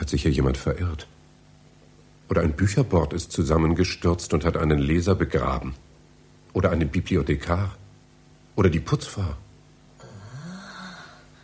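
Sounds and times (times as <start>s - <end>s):
speech: 0.1s - 1.2s, 2.3s - 5.8s, 6.5s - 7.8s, 8.6s - 9.4s
person moaning among library bookshelves: 10.0s - 11.3s.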